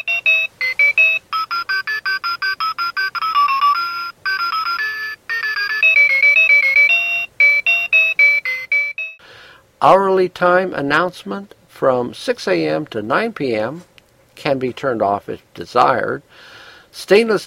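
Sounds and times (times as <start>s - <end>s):
water-resistant talking watch alarm electronic beeping melody: 0.0s - 9.2s
speech: 9.8s - 17.4s.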